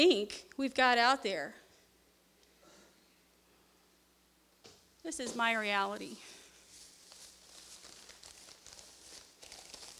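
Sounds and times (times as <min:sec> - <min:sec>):
speech: 0:00.0 - 0:01.6, 0:05.0 - 0:06.3
plastic bags crinkling as they are handled: 0:06.6 - 0:09.9.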